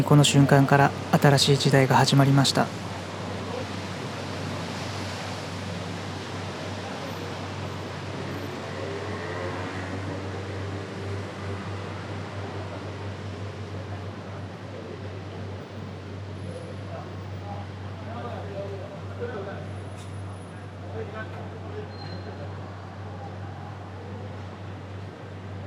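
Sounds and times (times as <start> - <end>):
speech: 0.0 - 3.0
cars passing at a street intersection at night: 0.0 - 13.7
traffic noise at a busy street intersection at night: 0.0 - 25.6.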